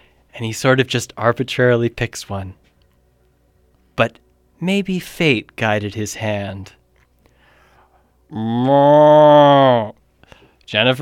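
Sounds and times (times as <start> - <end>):
speech: 0.4 - 2.6, 4.0 - 6.8, 8.3 - 10.0, 10.7 - 11.0
cow mooing: 8.3 - 9.9.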